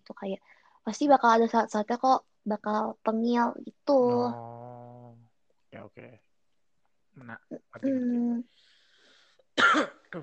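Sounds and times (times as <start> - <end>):
speech: 0.1 - 4.6, 5.7 - 6.3, 7.2 - 8.6, 9.6 - 10.2
drawn-out strained throat sound: 4.1 - 5.2, 5.8 - 6.2, 7.2 - 8.0
sharp loud cough burst: 9.6 - 10.0.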